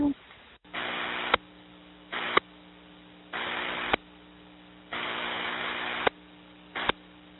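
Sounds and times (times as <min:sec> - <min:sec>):
steady low electrical hum: 0:00.0 - 0:07.3
radio static from transmitter key-ups over a repeater link in Florida: 0:00.7 - 0:02.6, 0:03.3 - 0:04.1, 0:04.9 - 0:07.3.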